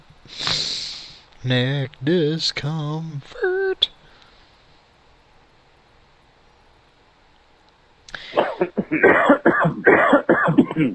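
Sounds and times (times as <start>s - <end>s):
speech: 1.4s - 3.5s, 10.8s - 10.9s
person in a coughing fit: 8.2s - 10.9s.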